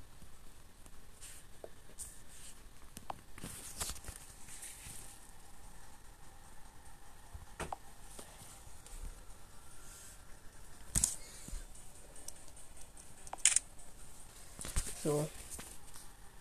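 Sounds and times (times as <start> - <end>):
handling noise and faint rustling: 0.9 - 5.5, 7.5 - 16.2
camera shutter clicks: 13.4 - 13.6
speech: 15.1 - 15.4.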